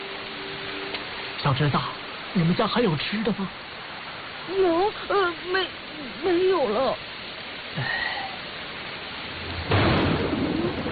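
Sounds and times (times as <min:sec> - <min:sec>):
steady heavy rain: 0:00.0 - 0:10.9
speech: 0:01.4 - 0:03.7, 0:04.5 - 0:07.1, 0:07.7 - 0:08.2
loud rumble of thunder: 0:09.3 - 0:10.9.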